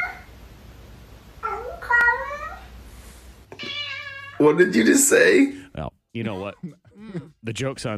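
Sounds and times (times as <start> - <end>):
cat yowling: 3.6 - 4.6
speech: 4.4 - 7.9.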